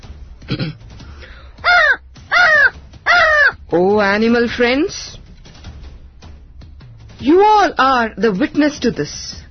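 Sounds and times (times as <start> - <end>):
speech: 0.5 - 0.8, 3.7 - 5.1, 7.2 - 9.4
crow rasping as if clearing its throat: 1.6 - 3.6.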